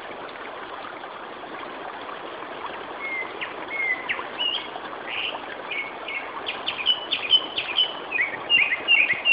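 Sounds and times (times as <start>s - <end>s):
Japanese thrush Turdus cardis singing rapid whistled notes: 3.0s - 9.3s.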